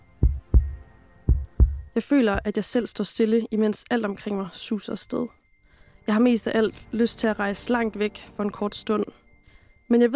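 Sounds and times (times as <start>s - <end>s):
deep thudding heartbeat sound effect: 0.2s - 2.5s
speech: 2.0s - 5.4s, 6.1s - 9.2s, 9.9s - 10.1s.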